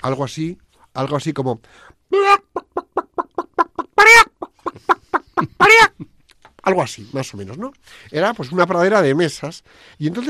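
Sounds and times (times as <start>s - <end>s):
speech: 0.0s - 2.5s, 6.7s - 10.2s
person vocally imitating a hen clucking and squawking: 2.1s - 6.1s.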